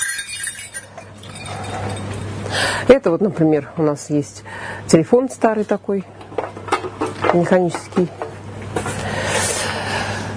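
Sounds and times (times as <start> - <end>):
small harness bells for a horse troika jingling: 0.0 - 2.2
steady low hum: 0.0 - 10.3
speech: 2.9 - 6.2, 7.3 - 8.2.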